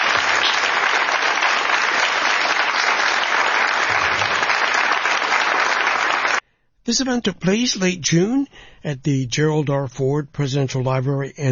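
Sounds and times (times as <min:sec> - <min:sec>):
audience applause: 0:00.0 - 0:06.4
speech: 0:06.9 - 0:11.4.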